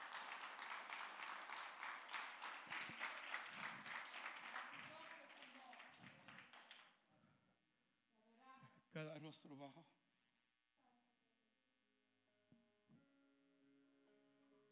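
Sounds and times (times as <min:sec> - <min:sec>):
standing church audience applause: 0:00.0 - 0:06.8
speech: 0:09.0 - 0:10.0.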